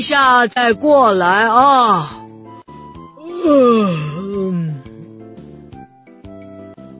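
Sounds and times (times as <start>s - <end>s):
speech: 0.0s - 2.2s, 3.4s - 4.7s
voice imitating an owl's long drawn-out sleepy yawn: 3.2s - 5.1s.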